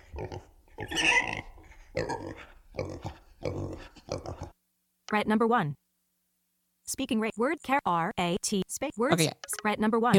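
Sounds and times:
pig oinking, played sound sample: 0.0 - 4.6
speech: 0.2 - 1.1, 5.1 - 5.8, 6.9 - 10.1.

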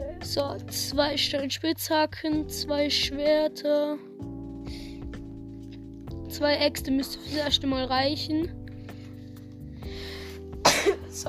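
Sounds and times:
speech: 0.2 - 4.3, 6.4 - 8.6, 10.8 - 11.2
person sneezing: 10.6 - 11.2.

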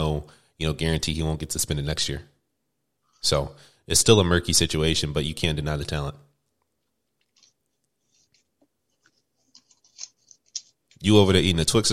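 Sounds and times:
speech: 0.1 - 2.3, 3.2 - 6.3, 11.0 - 11.9
paper rustling: 7.1 - 11.1.

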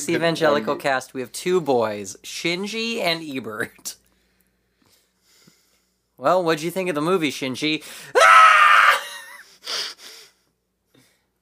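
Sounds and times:
speech: 0.0 - 4.0, 6.2 - 8.4
boy screaming: 8.2 - 9.1.

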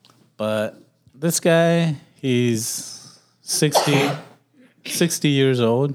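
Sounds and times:
speech: 0.4 - 2.9, 3.5 - 5.9
person sneezing: 3.6 - 4.4.

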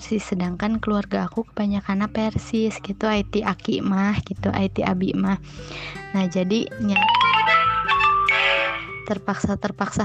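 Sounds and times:
speech: 0.0 - 7.3, 9.1 - 10.0
electronic phone notification chime: 7.0 - 9.2.

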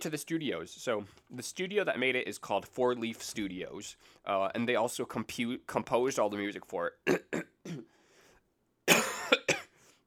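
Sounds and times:
speech: 0.0 - 7.9
person clearing a throat thick with mucus: 7.1 - 7.9, 8.9 - 9.8.

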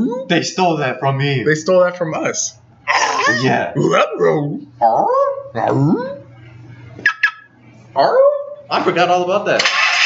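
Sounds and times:
speech: 0.3 - 6.2, 8.0 - 9.7
dog whining and yowling: 2.9 - 3.6, 4.8 - 6.3, 7.2 - 8.6.

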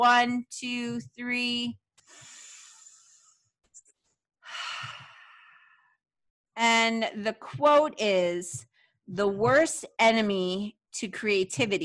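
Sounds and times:
speech: 0.0 - 2.3, 6.6 - 11.8
deep breath in and out: 2.0 - 3.4, 4.4 - 6.0.

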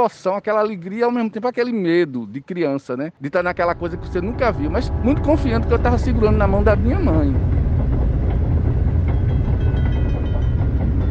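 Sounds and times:
speech: 0.0 - 7.5
train rolling along rails with clickety-clack: 3.4 - 11.0
train metallic squeals: 3.5 - 11.0.

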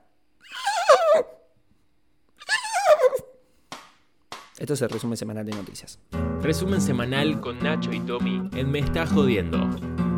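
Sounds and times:
person imitating a horse neighing: 0.4 - 1.4, 2.4 - 3.3
speech: 4.6 - 10.0.

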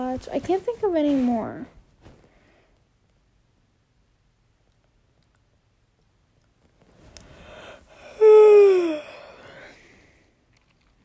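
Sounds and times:
speech: 0.2 - 1.8
drawn-out voiced yawn: 7.9 - 9.7.

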